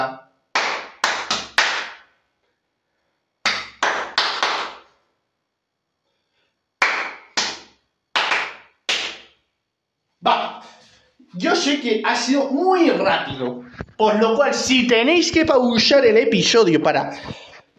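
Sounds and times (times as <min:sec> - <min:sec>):
sharp hand claps in a rhythmic pattern: 0:00.5 - 0:02.2, 0:03.4 - 0:05.0, 0:06.8 - 0:09.4
speech: 0:10.2 - 0:17.4.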